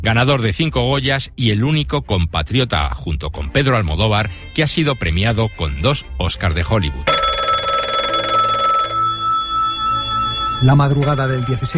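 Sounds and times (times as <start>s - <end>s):
speech: 0.0s - 7.2s, 10.6s - 11.7s
telephone ringing with buzzing bell tone: 7.1s - 11.7s.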